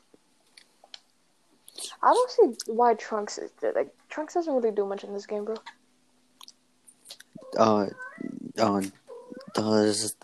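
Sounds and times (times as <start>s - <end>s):
speech: 2.0s - 5.8s, 7.6s - 9.0s, 9.6s - 10.2s
cat meowing: 7.4s - 10.0s.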